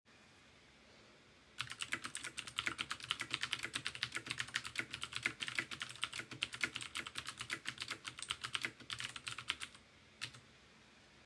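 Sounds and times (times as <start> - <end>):
clicky keyboard typing: 1.6 - 10.4.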